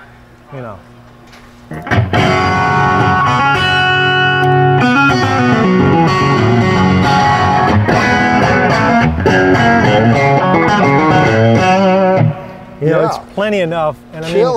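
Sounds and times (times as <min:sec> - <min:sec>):
speech: 0:00.5 - 0:01.0, 0:01.7 - 0:02.3, 0:13.0 - 0:14.5
Stratocaster electric guitar played straight into an amp with no reverb: 0:01.7 - 0:13.3.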